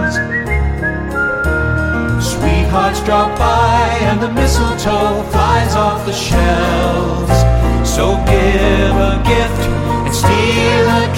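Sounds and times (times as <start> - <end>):
person whistling a bright melody: 0.0 - 2.4
festive Christmas song musical accompaniment: 0.0 - 11.1.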